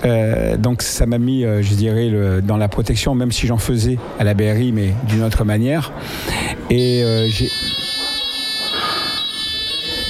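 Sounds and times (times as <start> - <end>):
speech: 0.6 - 7.9
fire alarm high-pitched tone: 6.8 - 10.0.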